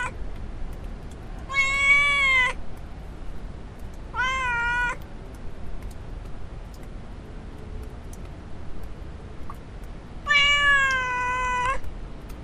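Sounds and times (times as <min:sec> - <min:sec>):
domestic cat meowing in a village in Portugal: 0:01.5 - 0:02.6, 0:04.1 - 0:05.0, 0:10.2 - 0:11.8.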